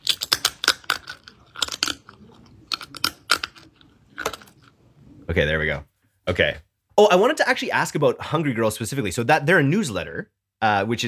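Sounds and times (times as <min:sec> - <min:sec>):
snack being bitten and chewed: 0:00.0 - 0:05.3
speech: 0:05.3 - 0:11.0.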